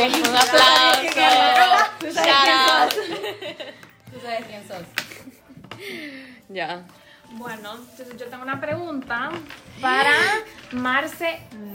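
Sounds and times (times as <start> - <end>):
applause: 0.0 - 3.2
laughter: 1.2 - 3.9
speech: 5.8 - 11.7.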